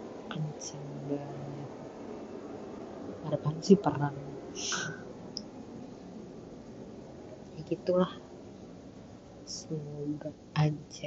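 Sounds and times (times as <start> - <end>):
airplane roar passing overhead: 0.0 - 11.0
speech: 0.6 - 1.5, 3.2 - 5.0, 7.7 - 8.2, 9.5 - 11.0.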